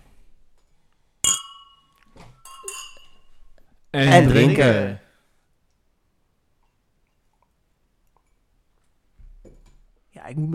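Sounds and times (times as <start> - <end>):
glasses clinking in a toast: 1.2 - 3.6
speech: 3.9 - 5.0, 10.3 - 10.5.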